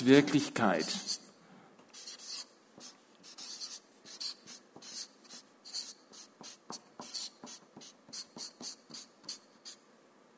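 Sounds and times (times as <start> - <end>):
speech: 0.0 - 1.2
pen or marker writing a long word by hand: 1.9 - 9.8.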